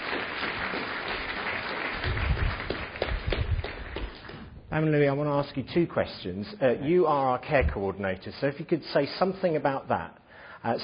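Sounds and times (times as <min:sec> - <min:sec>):
audience applauding: 0:00.0 - 0:04.5
speech: 0:04.7 - 0:10.8.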